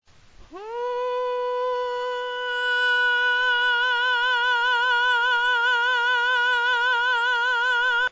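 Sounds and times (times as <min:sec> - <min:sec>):
pharyngeal falsetto singing: 0:00.5 - 0:08.1.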